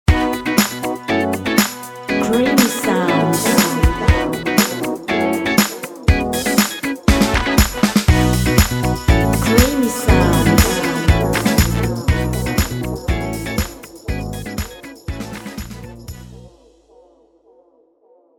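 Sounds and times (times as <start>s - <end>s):
happy funky music: 0.1s - 16.5s.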